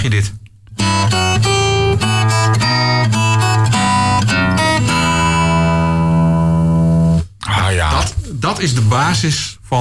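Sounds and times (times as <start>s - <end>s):
speech: 0.0s - 1.3s, 8.5s - 9.7s
solo guitar melody over its own bass line: 0.7s - 7.3s.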